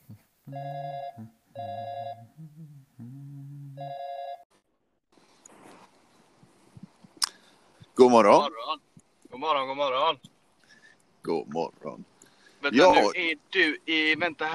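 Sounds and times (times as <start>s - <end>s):
speech: 0.1s - 3.3s, 8.0s - 8.8s, 9.4s - 10.2s, 11.3s - 14.5s
telephone ringing while caller waits for an answer: 0.5s - 2.2s, 3.8s - 4.4s.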